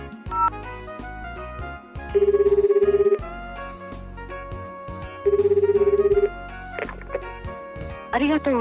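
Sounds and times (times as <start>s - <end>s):
music: 0.0s - 8.5s
telephone ringback tone while calling a city call center: 2.1s - 3.3s, 5.2s - 6.4s.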